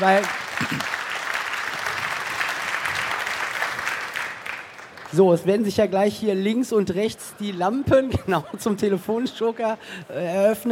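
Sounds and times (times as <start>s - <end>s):
speech: 0.0s - 1.0s, 5.1s - 10.7s
audience applause at the end of a talk: 0.0s - 5.2s.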